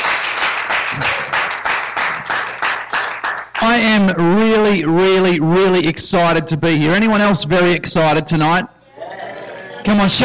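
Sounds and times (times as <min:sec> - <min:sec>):
crowd applauding: 0:00.0 - 0:03.7
speech: 0:03.7 - 0:08.8, 0:09.8 - 0:10.2.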